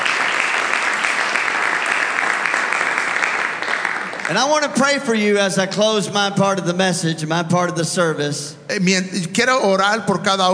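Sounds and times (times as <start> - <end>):
congregation clapping in a large room: 0.0 - 5.1
speech: 4.3 - 10.5.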